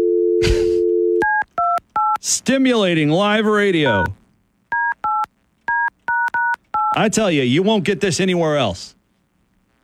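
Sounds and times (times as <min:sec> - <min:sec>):
telephone keypad dialing tones: 0:00.0 - 0:02.2, 0:03.8 - 0:04.1, 0:04.7 - 0:07.0
speech: 0:02.2 - 0:04.2, 0:07.0 - 0:09.0.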